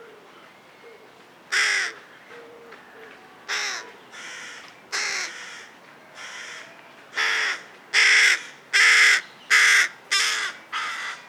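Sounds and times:
Carrion crow Corvus corone cawing: 0:03.5 - 0:06.6, 0:07.2 - 0:11.2.

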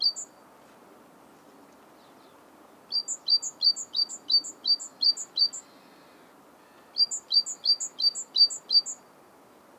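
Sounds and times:
great tit Parus major song: 0:00.0 - 0:00.4, 0:01.9 - 0:09.1
soft constant background hiss: 0:00.0 - 0:09.7.

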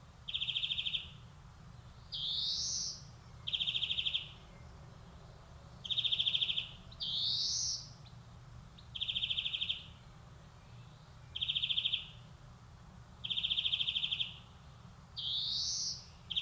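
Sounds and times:
low steady background hum: 0:00.0 - 0:16.4
European greenfinch Chloris chloris singing wheezes and trilled rattles: 0:00.3 - 0:01.2, 0:01.8 - 0:04.6, 0:05.8 - 0:12.3, 0:13.2 - 0:14.6, 0:15.2 - 0:16.4.

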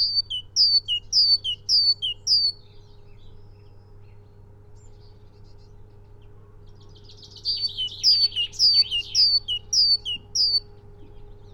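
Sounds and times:
Great tit (Parus major) singing two-note phrases: 0:00.0 - 0:02.6, 0:07.1 - 0:10.7
faint steady hum: 0:00.0 - 0:11.5.

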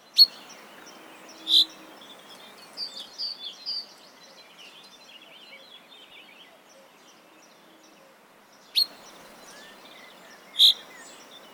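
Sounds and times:
steady background hiss: 0:00.1 - 0:04.6, 0:08.2 - 0:11.5
common chaffinch Fringilla coelebs calling with sharp high notes: 0:00.2 - 0:03.0, 0:08.8 - 0:11.5
faint common chaffinch chirps: 0:00.2 - 0:03.8, 0:08.7 - 0:11.5.

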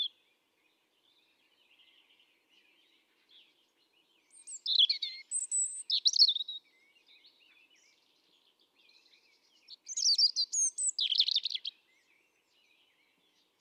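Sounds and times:
European robin twittering and whistling: 0:04.3 - 0:06.6, 0:09.7 - 0:11.8.

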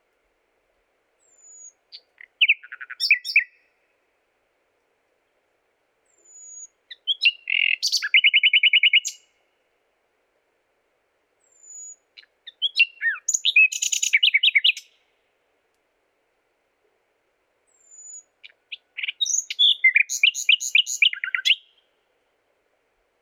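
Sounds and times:
common nightingale Luscinia megarhynchos song: 0:01.2 - 0:04.1, 0:05.2 - 0:09.6, 0:11.4 - 0:15.4, 0:17.6 - 0:22.3.

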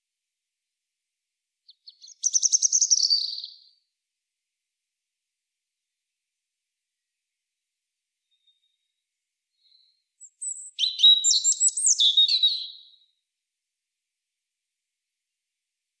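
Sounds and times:
European robin singing, Erithacus rubecula: 0:01.7 - 0:03.7, 0:08.2 - 0:13.1.

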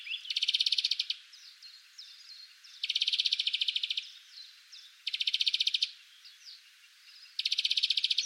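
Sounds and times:
European greenfinch Chloris chloris rattling trills: 0:00.0 - 0:01.2, 0:02.1 - 0:04.2, 0:05.0 - 0:05.9, 0:07.2 - 0:08.2
faint greenfinch twittering notes: 0:00.0 - 0:08.2.

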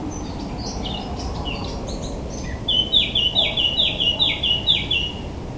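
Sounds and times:
Eurasian blackcap Sylvia atricapilla song: 0:00.1 - 0:05.4.

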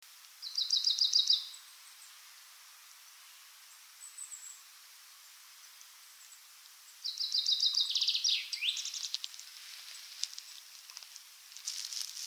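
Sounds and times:
background hiss: 0:00.0 - 0:12.2
common chaffinch Fringilla coelebs singing: 0:00.4 - 0:02.2, 0:05.7 - 0:10.7.

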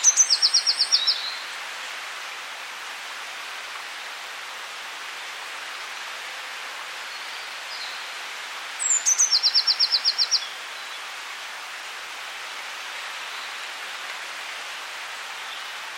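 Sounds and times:
Eurasian blue tit Cyanistes caeruleus song: 0:00.0 - 0:01.5, 0:08.8 - 0:10.6
quiet background hiss: 0:00.0 - 0:15.9.

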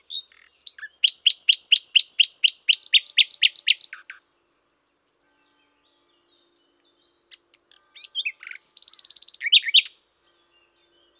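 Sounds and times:
common nightingale Luscinia megarhynchos singing: 0:00.0 - 0:04.5, 0:05.5 - 0:11.1.

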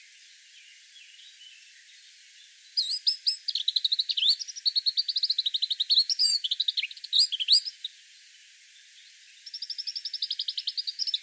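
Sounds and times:
Eurasian blackcap Sylvia atricapilla chattering song: 0:02.8 - 0:07.9, 0:09.5 - 0:11.2.

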